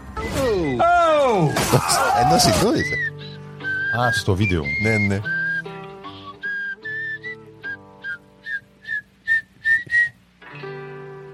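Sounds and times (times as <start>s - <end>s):
speech: 0.5s - 3.1s, 4.0s - 5.4s
person whistling a bright lilting cartoon theme tune: 2.8s - 10.2s.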